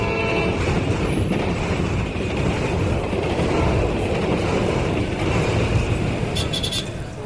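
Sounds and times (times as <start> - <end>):
train running on rails: 0.0 - 7.2
metallic squeaks: 6.3 - 7.0.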